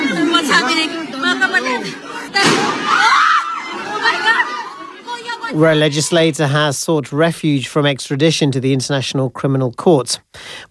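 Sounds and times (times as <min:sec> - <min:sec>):
crowd of people shouting and yelling excitedly: 0:00.0 - 0:06.3
gunshot inside the Philippine Senate: 0:02.4 - 0:03.0
speech: 0:05.5 - 0:10.6.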